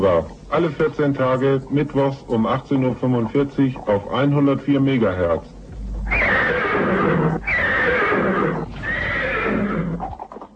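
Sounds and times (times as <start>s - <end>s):
speech: 0.0s - 5.6s
horse neighing cheerfully as a radio jingle: 6.0s - 10.2s.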